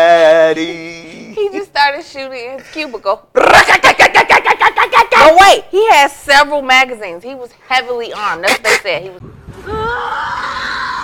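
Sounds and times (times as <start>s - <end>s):
speech: 0.5s - 0.8s, 1.6s - 10.6s
people screaming in anguish: 9.6s - 11.0s.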